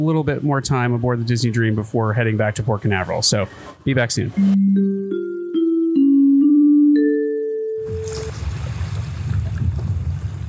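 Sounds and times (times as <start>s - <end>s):
speech: 0.0s - 5.4s
stepped musical tones: 4.1s - 8.4s
wind noise: 8.0s - 10.4s.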